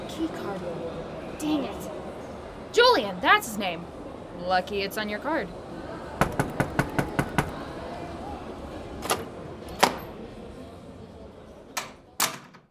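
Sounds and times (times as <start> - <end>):
speech: 0.2 - 2.0, 2.8 - 5.6
knocking on a door: 6.2 - 7.6.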